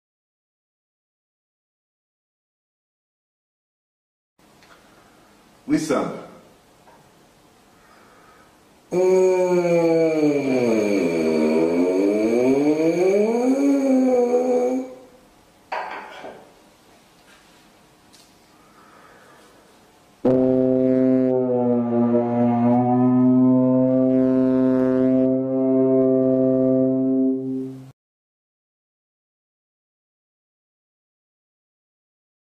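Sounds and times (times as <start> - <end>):
tuba glissando: 8.9 - 15.1, 20.2 - 27.9.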